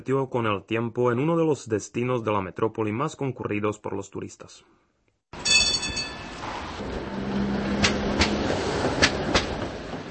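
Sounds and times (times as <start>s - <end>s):
speech: 0.0s - 4.9s
tram rolling along steel rails: 5.4s - 10.0s.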